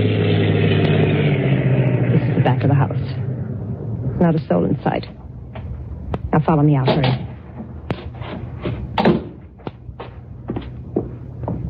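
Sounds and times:
low rumbling background: 0:00.0 - 0:11.6
speech: 0:04.2 - 0:05.2, 0:06.4 - 0:07.3
shuffling movement: 0:05.5 - 0:11.6
wooden cellar door thudding at the back of a house: 0:09.0 - 0:09.4.

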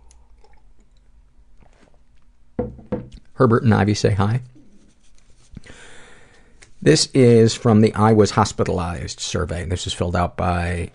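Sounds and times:
sipping tea from a cup: 0:00.0 - 0:02.3
speech: 0:03.4 - 0:04.6, 0:06.8 - 0:10.9.

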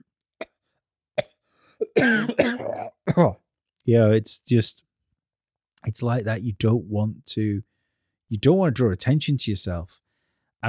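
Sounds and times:
person imitating nervous throat clearing: 0:01.2 - 0:03.4
speech: 0:01.9 - 0:04.9, 0:05.8 - 0:07.7, 0:08.3 - 0:10.0.

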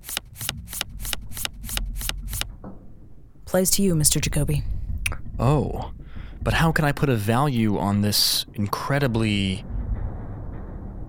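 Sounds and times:
deck of playing cards being shuffled for Texas Hold'em: 0:00.0 - 0:02.5
speech: 0:03.5 - 0:04.7, 0:05.4 - 0:09.7.

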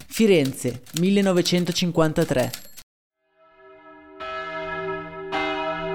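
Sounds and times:
speech: 0:00.2 - 0:02.7
church bell tolling a death knell: 0:03.4 - 0:05.9.

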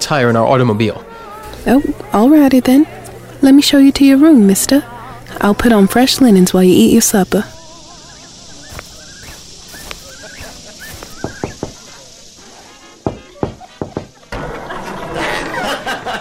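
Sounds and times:
speech: 0:00.0 - 0:07.6
low murmur: 0:00.8 - 0:16.1
laughter: 0:04.2 - 0:05.4, 0:07.4 - 0:08.7, 0:09.4 - 0:16.1
knocking on a door: 0:11.2 - 0:11.8, 0:13.0 - 0:14.2.

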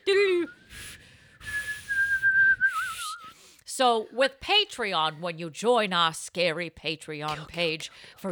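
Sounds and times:
person whistling: 0:00.3 - 0:03.4
speech: 0:03.8 - 0:08.3.

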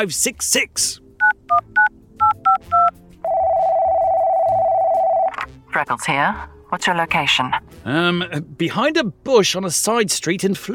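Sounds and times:
speech: 0:00.0 - 0:01.7, 0:05.8 - 0:10.7
satellite phone dialing touch-tone beeps: 0:01.2 - 0:05.3
loud steady electronic ringing tone of a satellite phone: 0:02.2 - 0:05.4.

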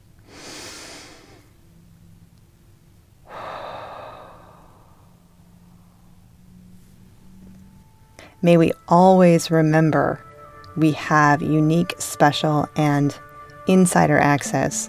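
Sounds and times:
deep breath during guided meditation: 0:00.2 - 0:01.6, 0:03.2 - 0:06.4
speech: 0:08.4 - 0:14.8.

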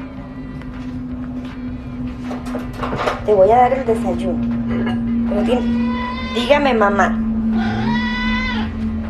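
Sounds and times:
steady low hum: 0:00.0 - 0:09.0
speech: 0:02.5 - 0:04.6, 0:05.3 - 0:07.7
cat meowing like saying mama: 0:05.6 - 0:06.6, 0:07.6 - 0:08.7.

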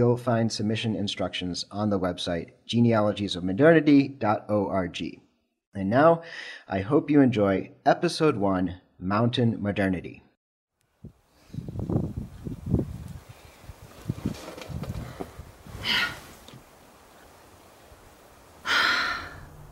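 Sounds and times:
speech: 0:00.0 - 0:05.2, 0:05.8 - 0:10.2
rock climber breathing hard while climbing a tall boulder without a rope: 0:06.2 - 0:06.7, 0:18.6 - 0:19.5.

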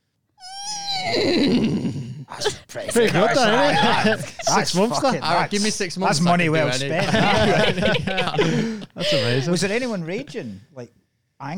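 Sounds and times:
person imitating a horse neigh: 0:00.4 - 0:02.2
speech: 0:01.0 - 0:11.5
laughter: 0:02.7 - 0:09.9.

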